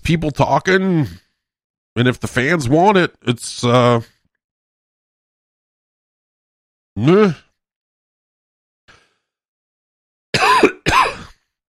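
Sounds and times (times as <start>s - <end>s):
speech: 0.1s - 1.2s, 2.0s - 4.1s, 7.0s - 7.4s
person coughing harshly: 10.4s - 11.4s.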